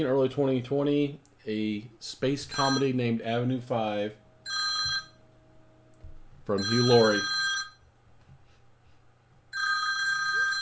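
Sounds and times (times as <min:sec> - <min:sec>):
speech: 0:00.0 - 0:04.6, 0:06.5 - 0:07.4
low hum: 0:00.0 - 0:10.5
phone ringing with an electronic trill: 0:02.5 - 0:03.0, 0:04.5 - 0:05.2, 0:06.5 - 0:07.9, 0:09.5 - 0:10.5.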